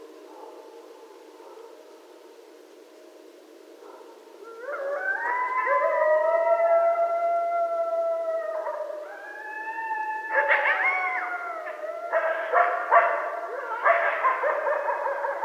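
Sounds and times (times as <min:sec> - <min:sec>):
several coyotes howling: 0:04.0 - 0:15.4.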